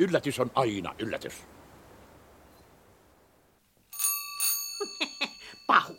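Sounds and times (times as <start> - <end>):
speech: 0.0 - 1.6
doorbell ringing with bright metallic rings and dings: 3.9 - 5.9.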